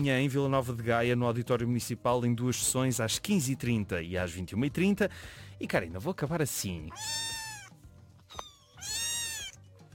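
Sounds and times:
speech: 0.0 - 7.3
baby kittens meowing: 6.9 - 9.6.

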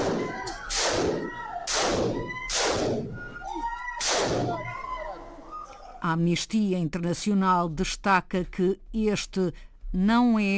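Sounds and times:
gunshots fired at close range: 0.0 - 3.3, 4.0 - 4.7
speech: 6.0 - 10.5.

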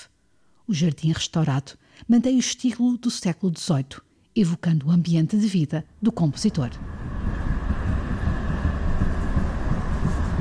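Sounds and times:
speech: 0.7 - 7.0
tram in Vienna rolling along rails: 6.3 - 10.3.

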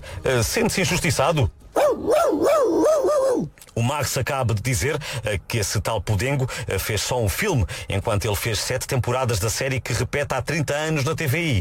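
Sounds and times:
speech: 0.3 - 11.5
dog bark-whine yowling: 1.8 - 3.5.

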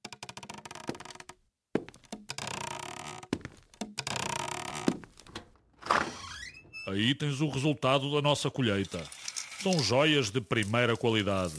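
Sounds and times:
wooden stairs creaking: 0.0 - 6.9
slow footsteps thumping on wooden stairs: 1.8 - 5.5
speech: 6.9 - 11.5.

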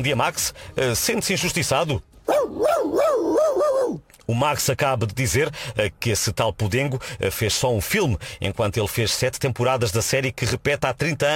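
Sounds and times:
speech: 0.0 - 11.3
dog whining: 2.3 - 4.0.

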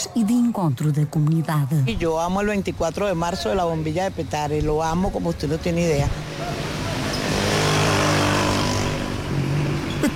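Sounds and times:
heavy city road traffic with cars: 0.0 - 10.1
speech: 0.1 - 6.6
motorbike revving: 3.6 - 10.1.

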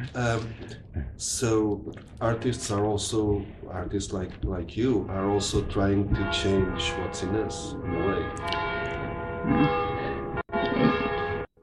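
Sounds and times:
speech: 0.0 - 8.8, 9.5 - 9.8
church bells ringing: 5.4 - 11.5.

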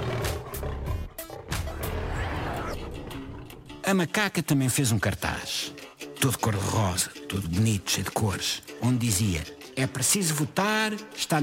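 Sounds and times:
lion roaring: 0.0 - 3.8
speech: 3.9 - 11.4.

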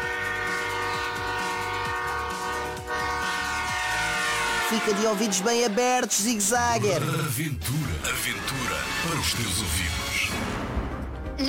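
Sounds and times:
train horn: 0.0 - 6.1
rumble of a passing train: 0.0 - 6.8
speech: 4.7 - 10.7.

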